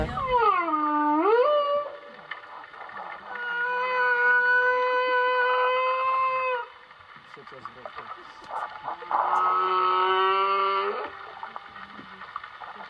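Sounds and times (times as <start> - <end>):
male whale song recorded with an underwater microphone in a bay: 0.1 - 2.1, 3.1 - 6.7, 8.5 - 11.9.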